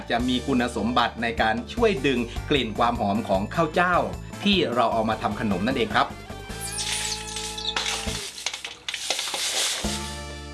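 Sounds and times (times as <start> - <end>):
speech: 0.1 - 6.2
soaked pounded jasmine rice batter stirred in a pan over low heat: 6.7 - 10.2.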